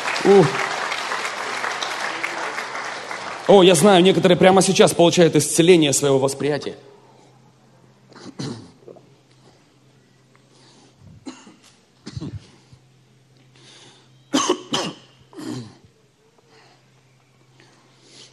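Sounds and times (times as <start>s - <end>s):
speech: 0.3s - 0.7s, 3.5s - 6.9s
person coughing: 8.1s - 9.0s, 11.2s - 12.6s, 14.3s - 15.9s.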